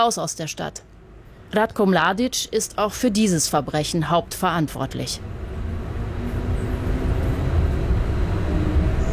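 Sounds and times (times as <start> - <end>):
speech: 0.0 - 5.4
tram riding along a multi-lane main city street: 2.9 - 9.1.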